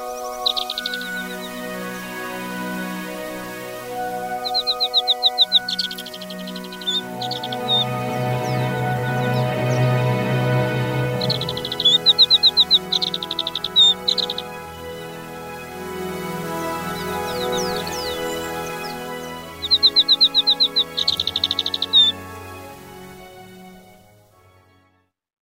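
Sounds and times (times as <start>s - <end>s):
faint bird twittering: 0.0s - 2.8s, 3.4s - 10.0s, 11.0s - 14.6s, 16.9s - 22.2s
Alpine accentor singing buzzy trilled song at Zao, Japan: 0.0s - 14.9s, 16.4s - 22.3s.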